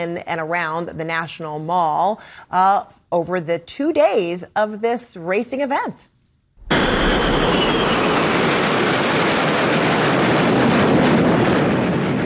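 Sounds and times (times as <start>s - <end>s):
speech: 0.0s - 6.1s
aircraft flyover above crowds lining a street race course: 6.7s - 12.2s.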